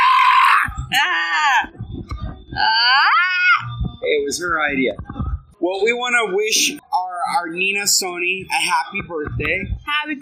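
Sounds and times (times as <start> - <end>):
person screaming: 0.0 - 1.7, 2.6 - 3.7
speech: 0.9 - 1.8, 4.3 - 10.1.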